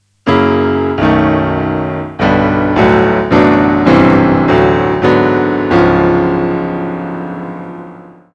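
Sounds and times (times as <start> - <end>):
chord sequence: 0.2 - 8.2.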